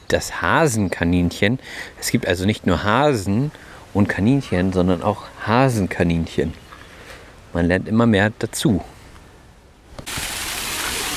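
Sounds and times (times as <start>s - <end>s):
speech: 0.1s - 6.6s, 7.5s - 9.0s
outdoor waterfall at a brown bear enclosure of an animal park: 10.0s - 11.1s.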